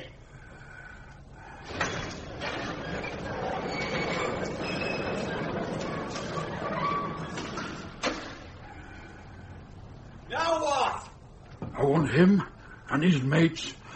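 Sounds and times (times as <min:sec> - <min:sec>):
big heavy doors rolling open with metallic rumble and scrape: 0:01.3 - 0:10.3
speech: 0:12.2 - 0:13.8.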